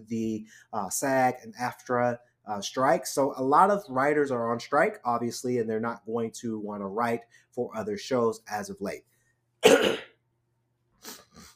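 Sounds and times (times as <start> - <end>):
speech: 0.0 - 10.0
person coughing: 9.6 - 10.2.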